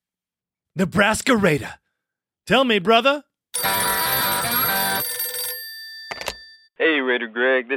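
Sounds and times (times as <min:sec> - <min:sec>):
speech: 0:00.8 - 0:01.8, 0:02.5 - 0:03.8, 0:07.1 - 0:07.7
telephone ringing for an incoming caller: 0:03.6 - 0:06.7.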